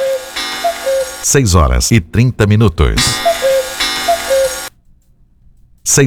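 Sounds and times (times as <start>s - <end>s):
radio station time signal electronic pips: 0.0s - 1.8s, 2.8s - 4.7s
man talking loudly: 1.2s - 3.2s, 5.9s - 6.0s
speech: 1.2s - 3.4s, 5.9s - 6.0s.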